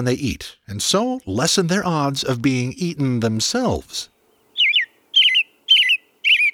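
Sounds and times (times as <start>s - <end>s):
speech: 0.0s - 4.1s
woodland bird singing warbling whistled phrases: 4.2s - 6.5s.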